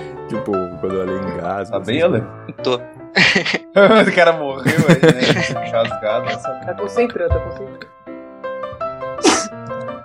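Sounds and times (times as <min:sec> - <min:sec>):
speech: 0:00.3 - 0:08.0
laughter: 0:03.2 - 0:06.9
person sneezing: 0:09.2 - 0:09.6.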